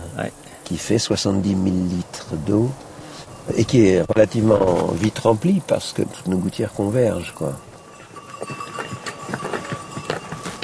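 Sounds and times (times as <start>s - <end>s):
speech: 0.2s - 7.7s
donkey hooves clopping along a footpath: 0.2s - 10.6s.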